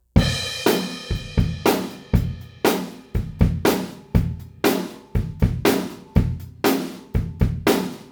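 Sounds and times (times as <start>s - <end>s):
retro drums: 0.0s - 8.1s.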